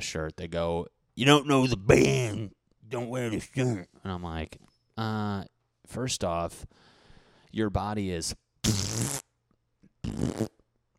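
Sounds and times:
speech: 0.0 - 6.9, 7.5 - 9.2
loud buzzy fart noises: 8.6 - 9.4, 10.0 - 10.7.

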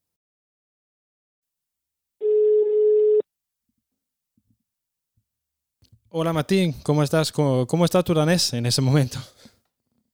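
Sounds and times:
telephone ringing tone while placing an outgoing call: 2.2 - 3.2
speech: 6.1 - 9.5.

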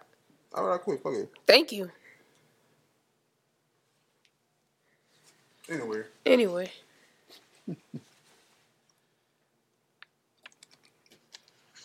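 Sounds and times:
speech: 0.6 - 2.0, 5.7 - 8.1
person chewing bread: 10.3 - 11.8.

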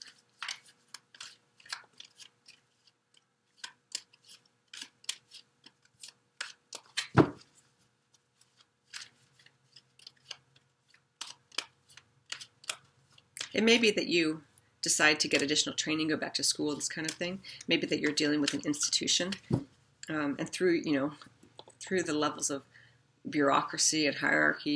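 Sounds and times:
tarot card drawn from the deck with papery snaps and flicks: 0.0 - 2.9, 3.6 - 7.5, 8.4 - 13.2
tarot card thump: 6.8 - 7.5, 19.4 - 19.7
speech: 13.6 - 21.3, 21.9 - 24.7.

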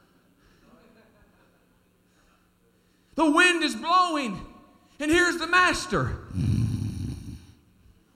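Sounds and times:
speech: 3.2 - 6.5
person imitating snoring: 6.3 - 7.6.

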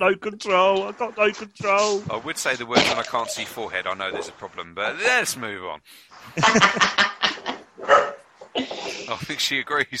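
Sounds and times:
speech: 0.0 - 9.9
laughter: 6.2 - 7.7
dog barking in short sharp yelps: 7.8 - 8.2.

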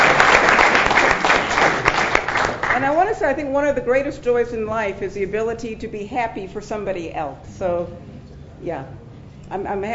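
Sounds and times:
crowd applauding recipients: 0.0 - 2.8
speech: 3.2 - 9.9.

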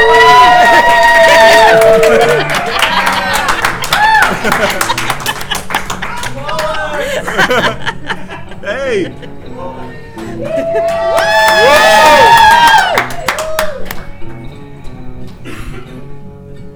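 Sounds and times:
live audience clapping in Salt Lake City: 0.0 - 7.8, 10.6 - 14.2
laughter: 0.3 - 11.8.

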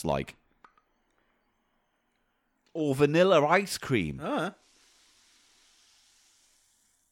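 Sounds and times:
speech: 0.0 - 0.4, 2.8 - 4.6
carbonated drink fizzing: 4.5 - 7.1.

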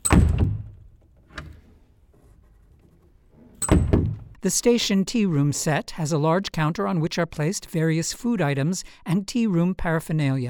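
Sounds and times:
side door on a theatre stage set opening and closing: 0.0 - 1.9, 2.8 - 4.4
speech: 4.4 - 10.4.

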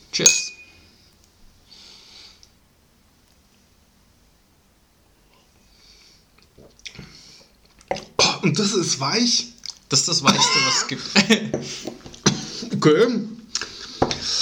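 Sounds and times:
speech: 0.2 - 0.4, 8.4 - 12.0, 12.8 - 13.3
glasses clinking in a toast: 0.2 - 0.8
soft wet sipping and mouth sounds: 6.4 - 8.1.

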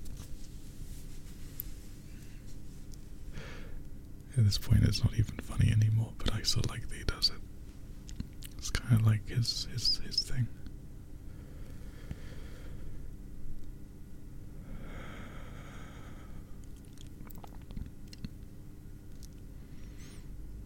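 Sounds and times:
steady breathing: 3.3 - 3.8, 11.3 - 13.1, 14.6 - 16.6, 19.6 - 20.4
speech: 4.4 - 7.4, 8.9 - 10.6
wet chewing-like mouth noises: 16.6 - 18.5.

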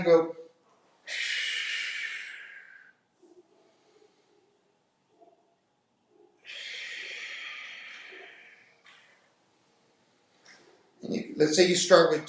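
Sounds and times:
speech: 0.0 - 0.4, 11.1 - 12.2
forceful breathing in and out during squats: 1.0 - 4.5, 6.4 - 9.2.

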